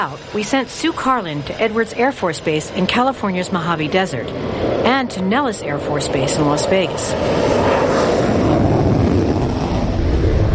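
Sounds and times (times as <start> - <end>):
speech: 0.0 - 8.4
F-22 Raptor jet fighter engine roar at a U.S. Air Force base: 0.0 - 10.5.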